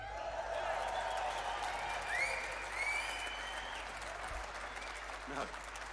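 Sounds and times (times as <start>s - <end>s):
audience applauding: 0.0s - 5.9s
audience whoops or whistles: 1.0s - 3.8s
speech: 5.3s - 5.6s.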